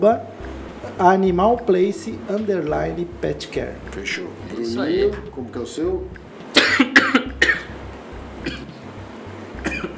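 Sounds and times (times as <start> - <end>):
speech: 0.0 - 0.3, 1.0 - 6.8
low hum: 0.0 - 9.9
short sharp coughs: 6.6 - 7.7, 9.6 - 9.9.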